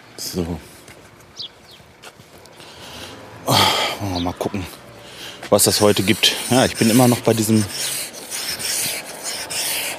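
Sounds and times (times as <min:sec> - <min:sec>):
speech: 0:00.3 - 0:00.7, 0:04.2 - 0:04.9, 0:05.5 - 0:08.0
scraper scraping on a hard surface: 0:05.5 - 0:09.9.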